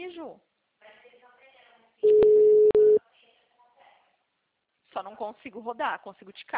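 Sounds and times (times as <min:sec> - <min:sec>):
telephone ringback tone while placing a call: 0:02.0 - 0:03.0
speech: 0:05.0 - 0:06.5.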